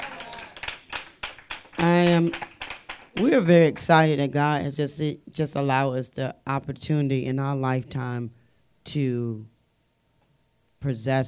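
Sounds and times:
audience clapping in praise to God: 0.0 - 3.4
speech: 1.8 - 2.5, 3.2 - 9.5, 10.8 - 11.2.

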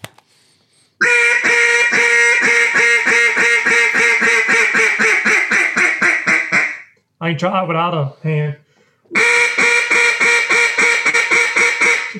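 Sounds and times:
hunting duck call blowing raspy quacks: 1.0 - 7.0, 9.1 - 12.1
speech: 7.3 - 8.6.

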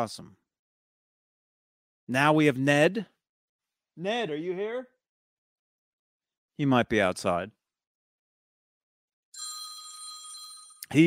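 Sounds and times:
speech: 0.0 - 0.4, 2.1 - 3.1, 4.0 - 4.9, 6.6 - 7.6
telephone ringing with a bright electronic ring: 9.4 - 11.0.

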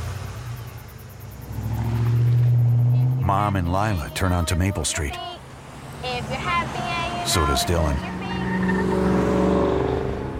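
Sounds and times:
truck engine starting, idling and revving as the truck pulls away: 0.0 - 4.5, 5.6 - 10.3
speech: 3.3 - 5.4, 6.0 - 9.1.

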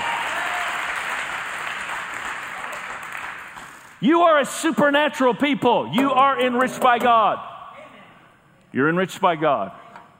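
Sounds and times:
large audience applause: 0.0 - 3.9
speech: 4.0 - 7.5, 8.7 - 10.1.

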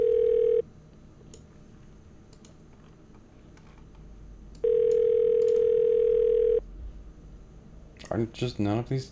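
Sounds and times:
phone ringback tone while calling a number that goes unanswered: 0.0 - 0.6, 4.6 - 6.6
speech: 8.2 - 9.1.

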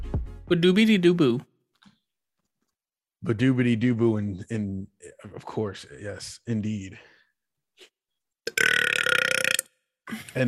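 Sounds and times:
speech: 0.5 - 1.5, 3.2 - 7.1, 10.1 - 10.4
loud burp after drinking grapefruit-flavored sparkling water: 8.4 - 9.8.

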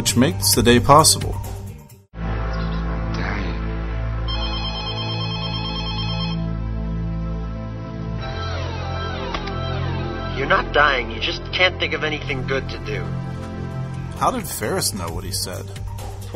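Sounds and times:
speech: 0.0 - 1.5, 10.8 - 13.5, 14.2 - 16.3
steady droning musical backdrop: 2.2 - 16.3
telephone ringing with a trilling electronic tone: 4.3 - 6.5, 8.2 - 10.4.

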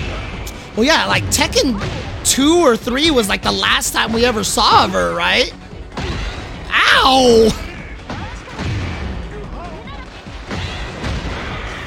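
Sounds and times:
video game explosions and crashing impacts: 0.0 - 11.8
speech: 0.8 - 5.6, 6.9 - 7.6
brief vocal-like shouts and chirps in a video game: 6.7 - 7.6.

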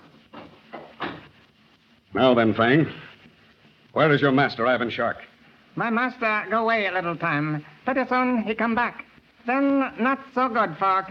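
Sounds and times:
library door being closed: 0.3 - 1.3
speech: 2.2 - 3.1, 4.0 - 11.0.

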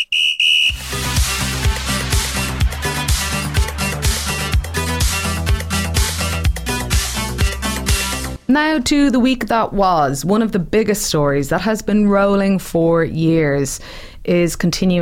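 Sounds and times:
short shrill referee whistle blast: 0.0 - 0.9
driving music with a steady punchy beat: 0.7 - 8.4
speech: 8.5 - 15.0.

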